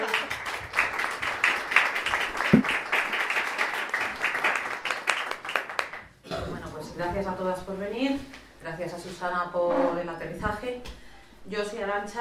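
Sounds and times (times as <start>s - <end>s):
audience applause at a neighbourhood talk day: 0.0s - 6.0s
speech: 7.2s - 12.1s.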